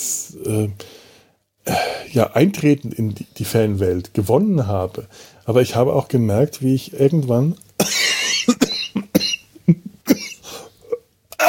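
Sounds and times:
speech: 0.3 - 0.9, 2.1 - 8.0
coughing after choking on something swallowed: 1.7 - 2.2, 7.8 - 11.4.

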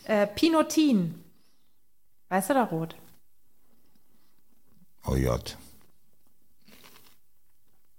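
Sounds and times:
speech: 0.0 - 1.2, 2.3 - 3.0, 5.0 - 5.6
person crunching a snack while eating: 5.8 - 7.9.

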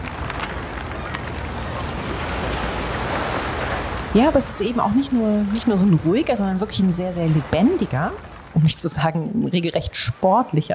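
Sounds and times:
river water washing and lapping at the waterfront: 0.0 - 10.7
speech: 4.1 - 10.7.

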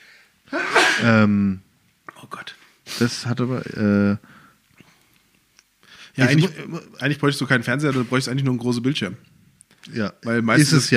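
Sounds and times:
person sneezing: 0.5 - 1.3
speech: 1.0 - 1.6, 2.2 - 4.4, 6.2 - 9.3, 9.9 - 10.9.

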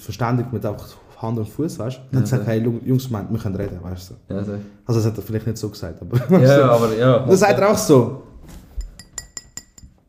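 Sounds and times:
speech: 0.0 - 8.6
laughter: 6.1 - 7.0
glass clinking: 8.7 - 10.0.

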